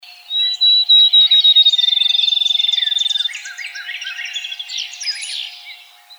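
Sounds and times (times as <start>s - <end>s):
field sparrow song: 0.0s - 6.1s.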